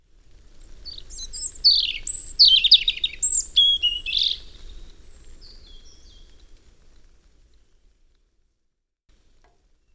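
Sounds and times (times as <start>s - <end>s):
European robin Erithacus rubecula whistling: 0.8s - 6.5s.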